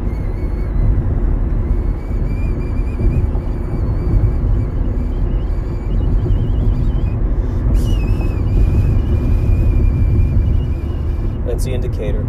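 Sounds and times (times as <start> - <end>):
heavy constant car road rumble over bumps: 0.0 - 12.2
person whistling a thin sustained tone in a car: 1.7 - 11.5
speech: 11.7 - 12.2.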